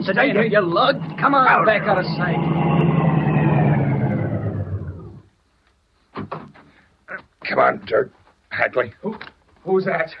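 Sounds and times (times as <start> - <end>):
speech: 0.0 - 2.9, 7.5 - 10.1
loud car engine rumbling and roaring as the car approaches: 0.0 - 5.4.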